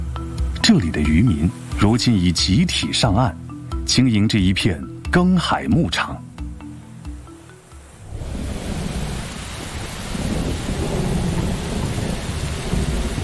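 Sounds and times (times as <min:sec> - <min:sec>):
heavy rain pouring down in a thunderstorm: 0:00.0 - 0:04.5, 0:07.3 - 0:13.2
speech: 0:00.7 - 0:06.3
deep thunder rumbling: 0:08.0 - 0:13.2.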